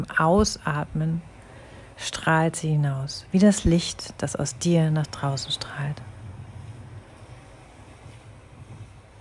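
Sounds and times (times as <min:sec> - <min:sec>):
speech: 0:00.0 - 0:01.3, 0:02.0 - 0:06.1
broad wash of ocean surf with a deep low rumble: 0:03.5 - 0:09.1.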